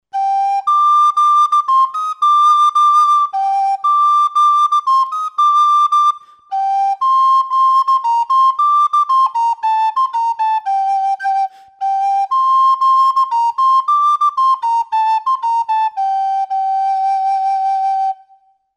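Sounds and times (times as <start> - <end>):
traditional Pito Galego music: 0.0 - 18.5.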